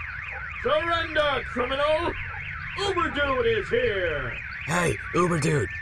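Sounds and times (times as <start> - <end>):
speech: 0.6 - 5.7
electronic alarm warbling: 4.6 - 5.7.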